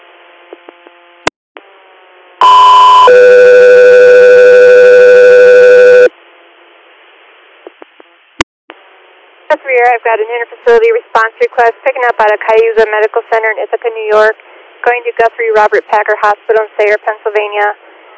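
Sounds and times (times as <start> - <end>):
two-tone alert from a dispatch radio channel paging an ambulance crew: 2.4 - 6.1
radio static: 9.5 - 17.8
speech: 9.5 - 17.8.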